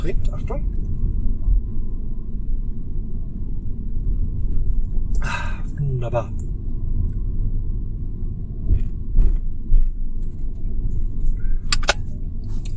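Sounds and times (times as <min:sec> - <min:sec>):
speech: 0:00.0 - 0:01.1, 0:05.2 - 0:06.4
car driving along a road toward a bridge over the Inn river: 0:00.0 - 0:12.7.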